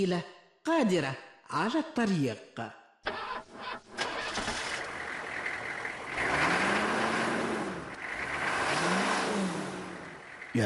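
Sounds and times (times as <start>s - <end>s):
speech: 0.0s - 2.8s
early Benz motor car engine starting and running: 3.1s - 10.6s.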